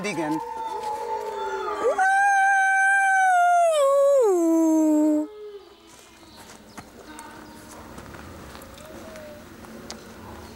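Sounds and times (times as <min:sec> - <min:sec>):
speech: 0:00.0 - 0:00.6
quiet outdoor noise: 0:00.0 - 0:10.5
wolf howling: 0:00.3 - 0:05.7, 0:08.5 - 0:09.6.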